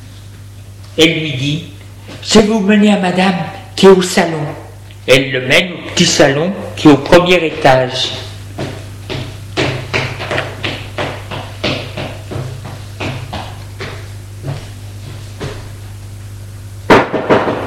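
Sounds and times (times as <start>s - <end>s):
speech: 1.0s - 8.3s
maid knocking on the door of a small first-floor sitting room: 8.6s - 14.6s, 16.9s - 17.6s.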